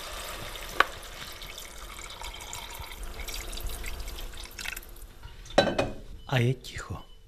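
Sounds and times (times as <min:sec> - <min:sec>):
cold water pouring into a pot of sautéed onion, pumpkin and potatoes: 0:00.0 - 0:05.1
speech: 0:06.3 - 0:07.1.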